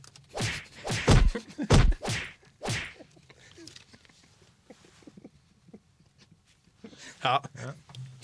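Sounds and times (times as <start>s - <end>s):
karate strikes, whacks and thuds: 0.4s - 3.0s
speech: 7.2s - 7.8s.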